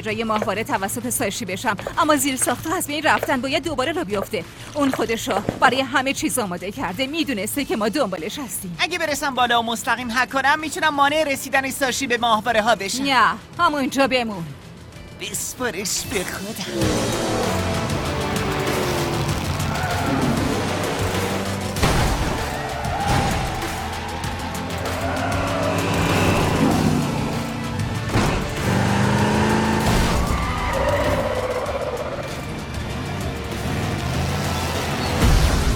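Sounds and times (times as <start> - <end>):
speech: 0.0 - 14.6, 15.2 - 17.6
screeching tires: 16.8 - 21.8, 22.4 - 35.6
cars skidding: 16.8 - 32.5
loud booming impacts of crashing cars: 21.7 - 23.9, 28.0 - 28.8.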